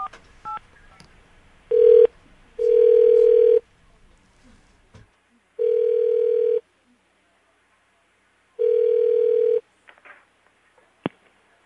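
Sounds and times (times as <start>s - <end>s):
telephone dial tone while placing a call: 1.7s - 3.6s, 5.6s - 6.6s, 8.6s - 9.6s.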